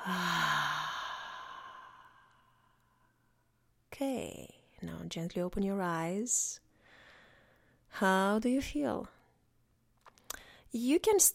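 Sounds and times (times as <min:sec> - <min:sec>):
deep breath out during a guided meditation: 0:00.0 - 0:03.2
speech: 0:04.0 - 0:06.6, 0:07.9 - 0:09.2, 0:10.7 - 0:11.3.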